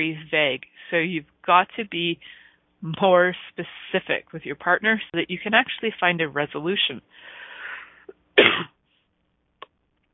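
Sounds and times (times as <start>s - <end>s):
speech: 0.0s - 7.4s, 8.4s - 8.8s
person coughing: 8.0s - 8.8s.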